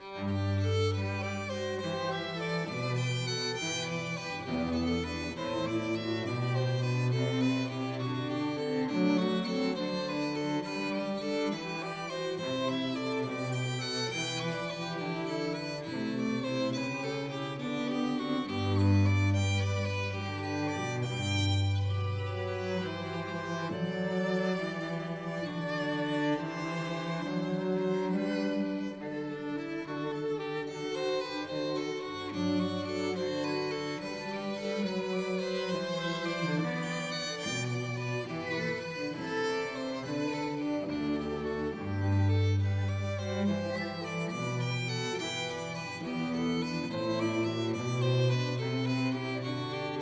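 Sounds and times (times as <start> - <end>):
string trio ensemble playing: 0.0 - 49.9.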